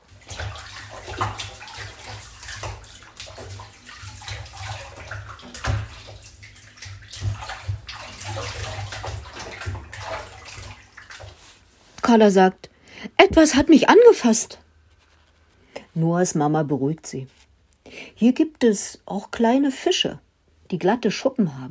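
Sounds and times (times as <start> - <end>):
children splashing in water: 0.0 - 11.6
speech: 12.1 - 12.7, 13.3 - 14.6, 16.0 - 17.4, 18.2 - 21.6.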